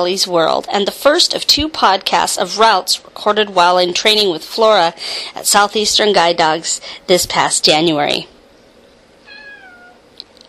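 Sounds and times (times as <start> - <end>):
speech: 0.0 - 8.4
pet cat meowing: 9.2 - 10.0.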